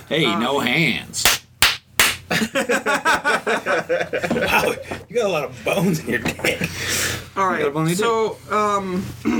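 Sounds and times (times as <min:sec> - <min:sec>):
speech: 0:00.1 - 0:01.3, 0:02.3 - 0:09.3
hand slapping against a thigh: 0:01.2 - 0:02.3
laughter: 0:02.3 - 0:05.0.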